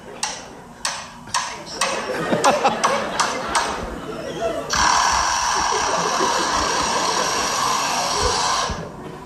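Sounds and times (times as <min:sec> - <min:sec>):
lyrebird mimicking hammer-like taps and clicks of construction machinery: 0:00.2 - 0:02.0
laughter: 0:01.8 - 0:08.4
lyrebird mimicking loud electric whirring of construction machinery: 0:04.7 - 0:09.0.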